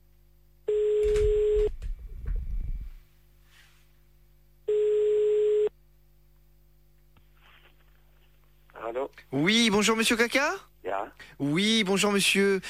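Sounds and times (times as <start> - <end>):
buzzy telephone line tones during an outgoing call: 0.7 - 1.8, 4.7 - 5.7
speech: 9.3 - 12.6.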